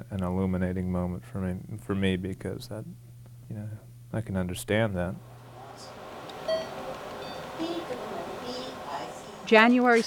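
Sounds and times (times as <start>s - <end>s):
steady low hum in a hospital: 0.0s - 10.0s
speech: 0.1s - 5.9s, 9.5s - 10.0s
lower, slightly longer electronic tone in a hospital: 5.8s - 7.9s
short electronic beep in a hospital as a chemotherapy infusion finishes: 6.5s - 7.5s.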